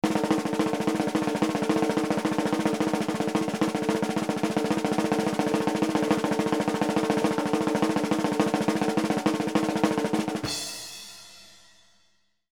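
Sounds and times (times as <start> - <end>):
cartoon open drum roll: 0.0 - 11.9
crash cymbal: 10.4 - 12.3.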